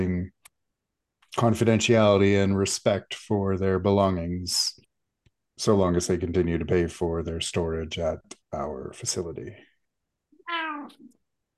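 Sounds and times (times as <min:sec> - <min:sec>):
speech: 0:01.3 - 0:04.8, 0:05.6 - 0:09.7
cat meowing: 0:10.4 - 0:11.1.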